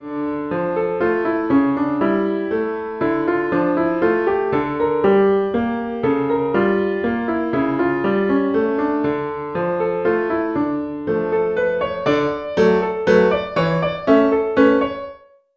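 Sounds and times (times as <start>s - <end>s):
intermediate piano solo: 0.0s - 15.5s.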